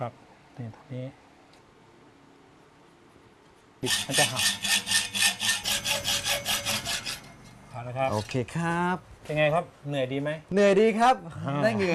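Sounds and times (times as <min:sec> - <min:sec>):
speech: 0:00.0 - 0:01.2, 0:03.8 - 0:04.8, 0:07.8 - 0:11.9
hand saw cutting through steel stock for a handmade frame: 0:03.8 - 0:07.5.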